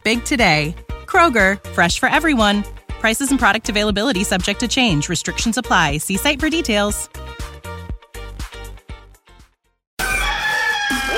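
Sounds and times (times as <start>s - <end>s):
speech: 0.0s - 7.2s
rooster crowing: 10.0s - 11.1s.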